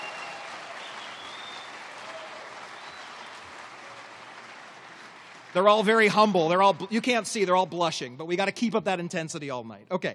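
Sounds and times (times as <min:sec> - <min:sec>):
audience applause: 0:00.0 - 0:08.1
speech: 0:05.5 - 0:10.1.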